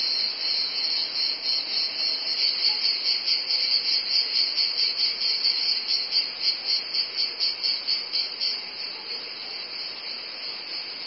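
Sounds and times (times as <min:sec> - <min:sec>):
cicadas buzzing: 0:00.0 - 0:11.0.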